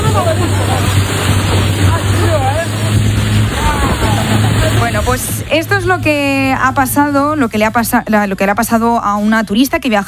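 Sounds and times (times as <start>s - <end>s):
wind buffeting the microphone: 0.0s - 7.9s
small motorboat engine droning at speed across the water: 0.0s - 10.0s
speech: 5.5s - 10.0s.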